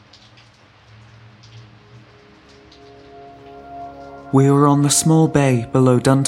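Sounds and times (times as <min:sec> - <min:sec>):
raindrops pattering on a nearby surface: 0:00.0 - 0:04.3
steady rain falling in a hissing wash: 0:00.0 - 0:06.2
speech: 0:04.3 - 0:06.2.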